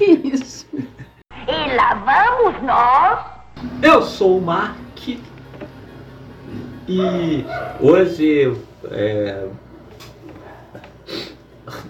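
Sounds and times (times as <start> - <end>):
speech: 2.0 - 5.3, 6.9 - 9.6
nasal sniffles from a man with the flu: 11.0 - 11.8.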